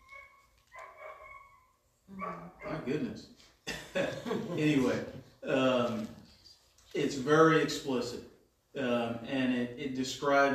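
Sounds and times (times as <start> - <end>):
dog barking outside: 0.1 - 1.6, 2.2 - 2.9
speech: 2.2 - 6.2, 7.0 - 10.5
laughter: 3.7 - 5.7.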